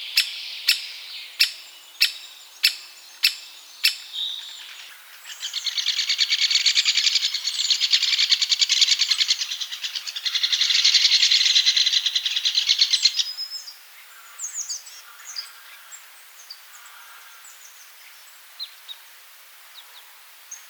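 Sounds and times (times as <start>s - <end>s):
great spotted woodpecker giving sharp kik calls: 0.0s - 13.3s.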